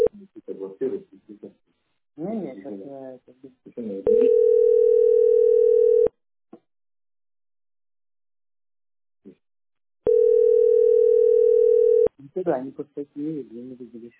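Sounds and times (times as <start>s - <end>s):
telephone dial tone while placing a call: 4.1s - 6.1s, 10.1s - 12.1s
speech: 12.5s - 14.1s.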